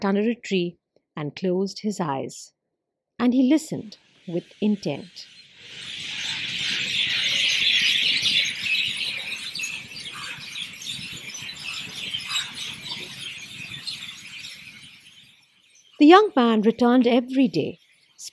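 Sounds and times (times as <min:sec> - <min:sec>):
speech: 0:00.0 - 0:02.6, 0:03.2 - 0:05.9, 0:16.0 - 0:18.3
birds chirping in a forest: 0:03.8 - 0:18.3.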